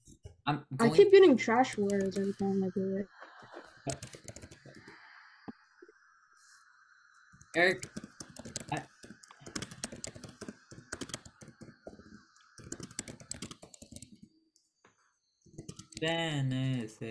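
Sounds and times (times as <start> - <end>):
speech: 0.5 - 3.2, 3.9 - 4.2, 7.6 - 8.0, 8.7 - 8.9, 16.0 - 17.1
typing on a computer keyboard: 1.7 - 2.5, 3.9 - 5.0, 7.6 - 14.2, 15.6 - 16.1.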